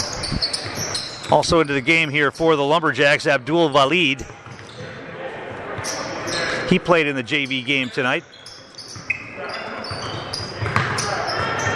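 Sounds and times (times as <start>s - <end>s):
murmur of the gym: 0.0s - 11.7s
basketball dribbled on the court during a high school game: 0.2s - 1.0s, 4.2s - 4.9s, 9.8s - 11.7s
continuous play-by-play commentary: 1.3s - 4.3s, 6.7s - 8.2s
speech: 1.3s - 4.4s, 6.7s - 8.4s.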